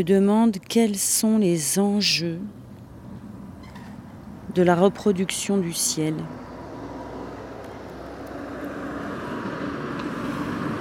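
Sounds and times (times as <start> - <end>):
speech: 0.0 - 2.6, 4.5 - 6.5
cars and trucks passing through village: 2.5 - 10.7.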